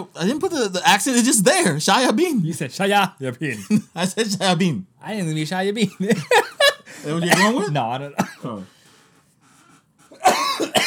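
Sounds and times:
speech: 0.0 - 8.8
laughter: 3.4 - 4.5, 5.7 - 8.6
harsh raspy coughs: 6.1 - 8.7, 10.1 - 10.8.

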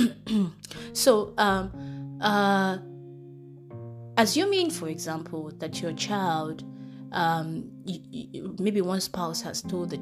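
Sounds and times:
person clearing throat: 0.0 - 0.6
person coughing: 0.0 - 0.6
speech: 0.0 - 2.9, 4.2 - 10.0.

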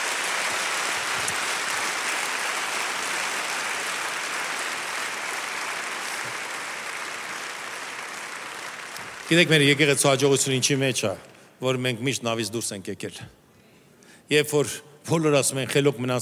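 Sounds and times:
church congregation applauding: 0.0 - 10.7
speech: 9.3 - 13.4, 14.3 - 16.1.

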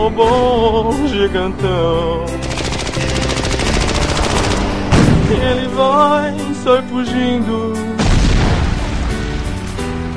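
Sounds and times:
speech: 0.0 - 3.4, 5.3 - 8.0
cannon blast in a video game: 2.5 - 6.2, 8.0 - 9.5.

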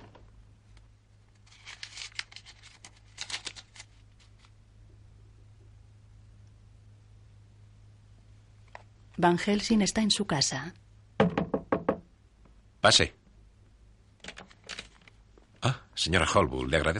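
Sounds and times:
papers being leafed through by hand: 0.0 - 4.6, 14.2 - 15.6
speech: 9.2 - 10.9, 12.8 - 13.2, 16.0 - 16.9.

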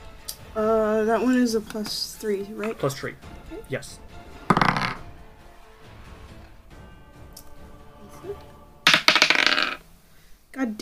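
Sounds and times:
speech: 0.5 - 4.1, 8.2 - 8.5, 10.6 - 10.8
dice clattering across a hard tabletop during a role-playing game check: 4.5 - 5.0, 8.9 - 9.8.

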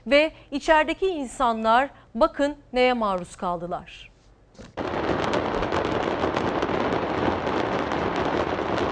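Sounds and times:
speech: 0.0 - 4.9
fireworks factory exploding with fireworks bursting and crackling: 4.6 - 8.9.

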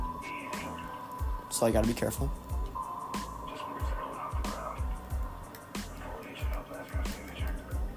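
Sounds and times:
electronic sonar ping in a video game: 0.0 - 5.3
underwater ambience in a video game: 0.0 - 7.9
speech: 1.6 - 2.4.

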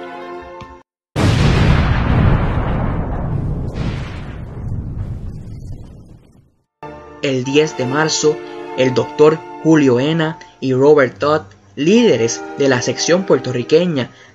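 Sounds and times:
music: 0.0 - 0.9, 6.8 - 11.2, 11.8 - 14.2
massive ship explosion: 1.2 - 6.7
speech: 7.2 - 14.3.

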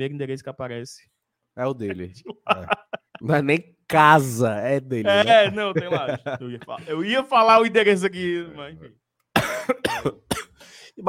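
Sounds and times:
speech: 0.0 - 9.0, 9.7 - 11.0
laughter: 1.9 - 3.3, 5.1 - 7.8
harsh chesty coughs: 9.4 - 10.8.

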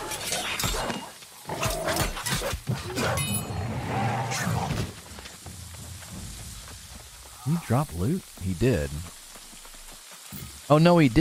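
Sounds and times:
war dogs snarling and growling in a video game: 0.0 - 4.8
speech: 7.5 - 9.2, 10.7 - 11.1.

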